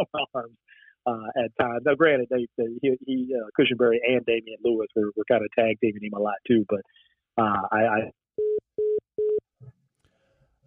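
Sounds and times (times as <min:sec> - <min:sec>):
speech: 0:00.0 - 0:08.6
steady telephone tones of a dropped call: 0:08.4 - 0:09.4.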